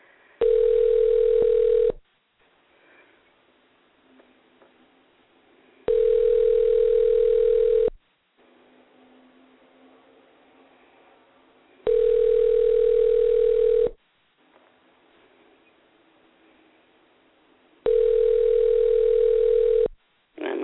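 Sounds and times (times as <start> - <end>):
telephone line ringing tones: 0.4 - 2.0, 5.9 - 8.0, 11.9 - 14.0, 17.9 - 20.0.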